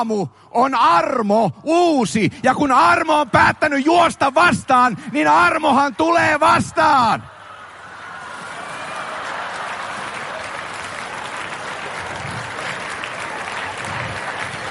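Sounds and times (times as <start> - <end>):
speech: 0.0 - 7.4
audience applauding: 7.9 - 14.6.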